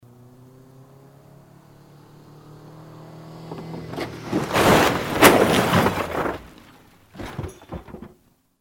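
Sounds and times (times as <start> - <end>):
stunt car falling: 3.4 - 8.4.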